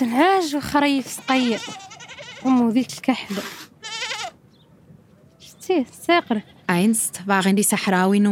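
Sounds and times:
speech: 0.0s - 3.6s, 5.7s - 8.2s
sheep or goats bleating in scrap metal pens on a sandy hill: 0.7s - 3.0s, 3.8s - 4.4s.

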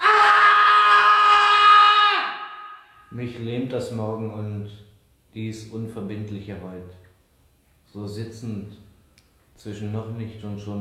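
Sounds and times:
man screaming at night: 0.0s - 3.1s
speech: 3.1s - 7.0s, 7.9s - 8.8s, 9.6s - 10.7s.

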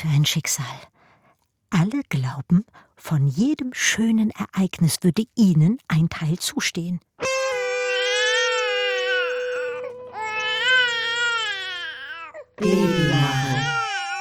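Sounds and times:
speech: 0.0s - 1.0s, 1.7s - 7.4s, 12.6s - 13.7s
infant crying: 7.5s - 14.1s.

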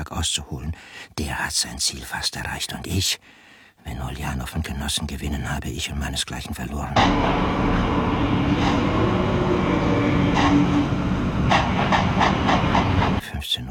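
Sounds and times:
speech: 0.2s - 11.1s, 13.4s - 13.6s
sharp metallic clanks: 7.0s - 13.2s
train at a station rumble and hiss before departure: 7.0s - 13.4s.

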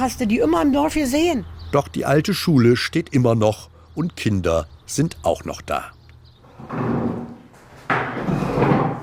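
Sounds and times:
speech: 0.0s - 6.0s, 6.6s - 7.2s
wooden chairs lifted down from tables in an old primary school: 6.4s - 9.0s.

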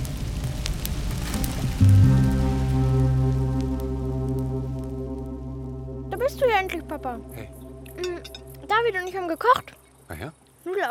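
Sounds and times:
fire spreading quickly, crackling and hissing: 0.0s - 10.8s
deep sustained droning tone: 2.7s - 10.1s
speech: 6.3s - 7.6s, 8.7s - 10.8s.

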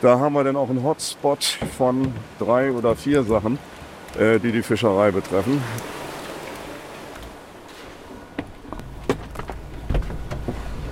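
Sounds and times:
speech: 0.0s - 6.0s
van dashboard creaks and clicks as vehicle pulls away: 1.5s - 4.6s, 7.1s - 10.9s
steady road noise: 1.5s - 10.9s.

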